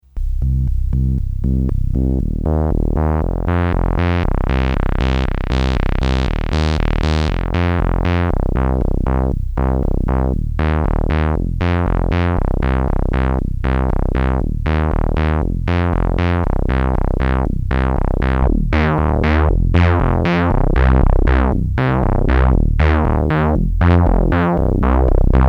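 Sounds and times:
oscillator filter modulation with cross modulation: 0.1s - 25.4s.

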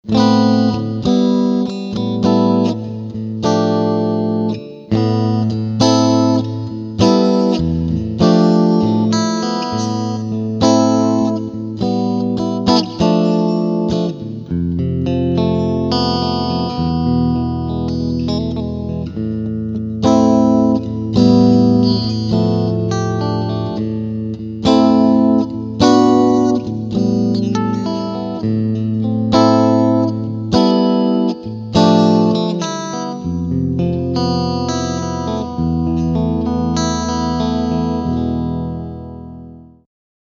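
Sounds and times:
single-coil electric guitar picking: 0.0s - 39.8s.

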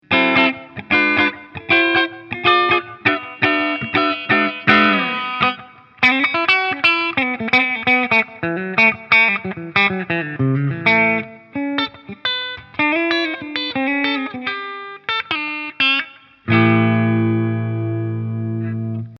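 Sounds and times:
Ibanez RG421HPAH electric guitar on clean middle humbucker: 0.0s - 19.1s.

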